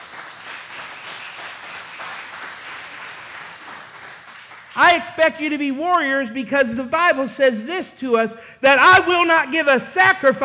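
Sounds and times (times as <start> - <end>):
audience clapping: 0.0 - 5.2
speech: 4.8 - 10.4.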